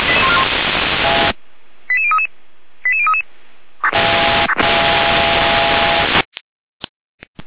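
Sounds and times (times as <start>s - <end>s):
radio static: 0.0s - 6.3s.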